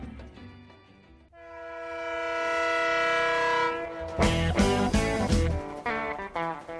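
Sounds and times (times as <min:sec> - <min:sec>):
loud sustained train horn: 0:01.3 - 0:06.7.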